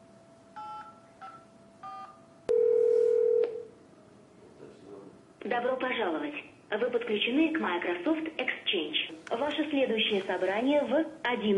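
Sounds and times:
faint constant hum: 0:00.0 - 0:11.5
steady telephone tone: 0:00.6 - 0:03.7
speech: 0:05.5 - 0:11.5.

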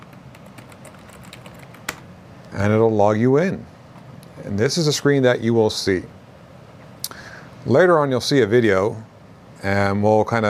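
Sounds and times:
typing a password on a computer keyboard: 0:00.0 - 0:02.0
speech: 0:02.5 - 0:03.7, 0:04.4 - 0:06.2, 0:07.6 - 0:10.4.

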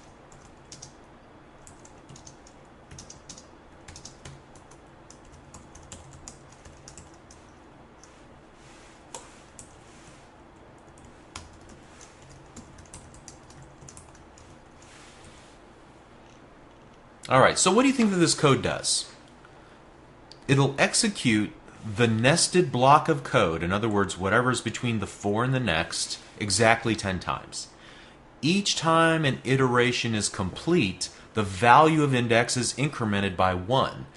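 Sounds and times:
faint hum: 0:00.0 - 0:34.1
typing on a computer keyboard: 0:00.3 - 0:01.0, 0:01.6 - 0:08.1, 0:10.8 - 0:14.6
speech: 0:17.3 - 0:19.1, 0:20.5 - 0:27.8, 0:28.4 - 0:34.1.

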